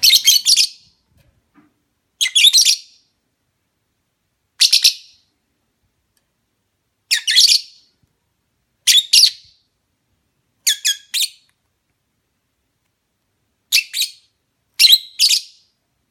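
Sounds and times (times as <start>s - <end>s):
lovebird mating call: 0.0s - 1.0s, 2.2s - 3.1s, 4.6s - 5.3s, 7.1s - 7.9s, 8.8s - 9.7s, 10.6s - 11.5s, 13.7s - 15.8s.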